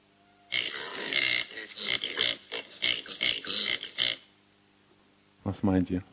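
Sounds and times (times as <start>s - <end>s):
pig grunting and oinking: 0.5s - 4.2s
speech: 5.5s - 6.1s.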